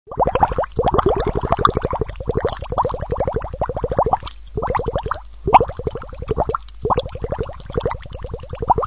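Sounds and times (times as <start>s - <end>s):
liquid bubbling: 0.1s - 8.8s.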